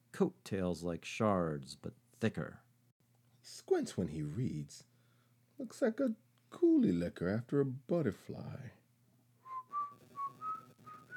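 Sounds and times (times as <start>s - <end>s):
speech: 0.2s - 2.6s, 3.5s - 4.9s, 5.6s - 8.8s
person whistling a short tune: 9.4s - 11.1s.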